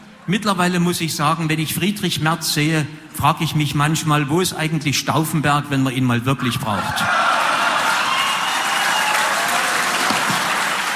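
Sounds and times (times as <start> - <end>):
speech: 0.3 - 7.2
audience hooting and jeering: 6.4 - 10.9
large audience clapping: 7.4 - 10.9.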